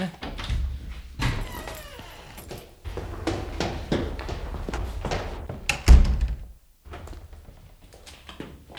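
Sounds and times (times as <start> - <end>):
soft irregular footsteps on a hard floor: 0.2 - 8.7
door thudding shut: 0.4 - 6.6.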